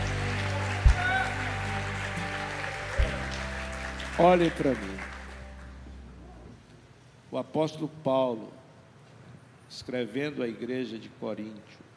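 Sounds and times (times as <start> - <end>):
church audience applauding: 0.0 - 5.9
speech: 4.2 - 5.2, 7.3 - 8.6, 9.7 - 11.8.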